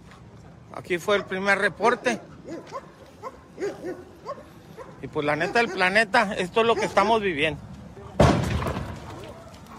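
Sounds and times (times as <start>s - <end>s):
speech: 0.8s - 2.9s, 3.6s - 4.4s, 5.0s - 7.7s
gunshot during a shootout: 8.2s - 9.1s.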